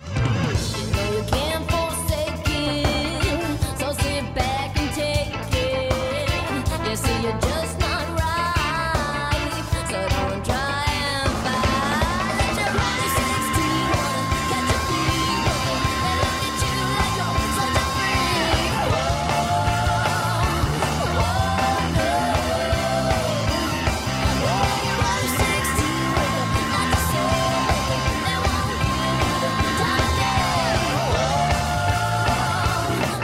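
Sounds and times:
raw gritty full-band album track with driving beat: 0.0s - 33.2s
strained shouted-sounding vocal: 10.9s - 33.2s.

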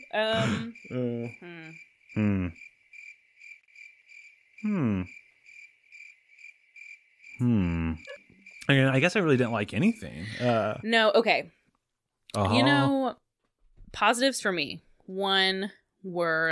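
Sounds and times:
crickets chirping: 0.0s - 10.9s
speech: 0.1s - 2.7s, 4.6s - 5.2s, 7.4s - 8.1s, 8.7s - 11.6s, 12.3s - 13.2s, 13.9s - 16.5s
person groaning low: 0.2s - 2.6s, 4.6s - 5.1s, 7.4s - 8.2s, 10.2s - 10.8s.

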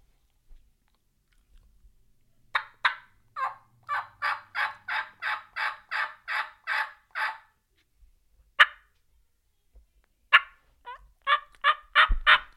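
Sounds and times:
hunter imitating hen turkey cuts and yelps: 2.6s - 7.5s, 8.6s - 8.9s, 10.3s - 12.5s.

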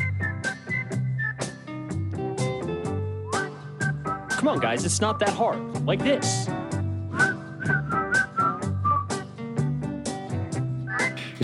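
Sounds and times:
person whistling a short bright melody: 0.0s - 1.7s, 3.3s - 4.4s, 7.1s - 9.3s, 10.8s - 11.4s
loud backing music with steady strummed beats: 0.0s - 11.4s
speech: 4.4s - 6.6s.

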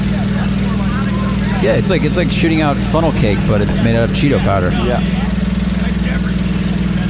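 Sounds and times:
laughter: 0.0s - 7.0s
small engine powering a Cheeto-powder snack shooting machine: 0.0s - 7.0s
speech: 1.6s - 5.3s.

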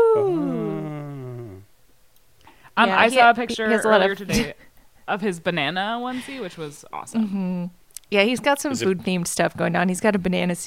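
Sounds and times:
baby boy wailing from the other side of the house: 0.0s - 1.6s
speech: 0.2s - 0.6s, 2.8s - 10.6s.

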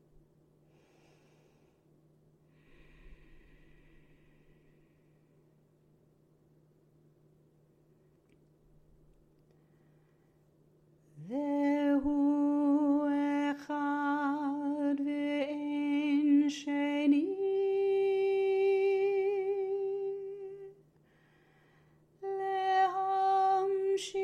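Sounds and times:
faint steady low hum: 0.0s - 24.2s
slow deep breathing: 0.6s - 5.6s, 21.0s - 22.1s.

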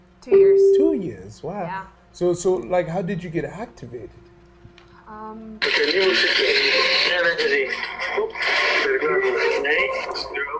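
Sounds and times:
speech: 0.2s - 4.3s, 5.1s - 10.5s
steady tone: 0.3s - 1.2s
crackling radio static interference: 5.6s - 10.5s.

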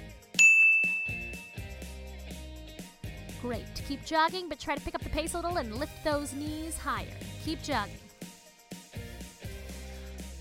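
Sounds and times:
bright bell ding marking exercise change: 0.4s - 1.6s
speech: 3.4s - 8.0s.

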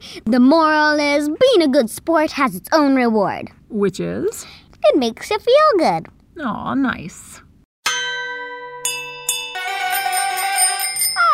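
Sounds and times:
speech: 0.2s - 7.4s
halftime bell ringing: 7.8s - 11.3s.

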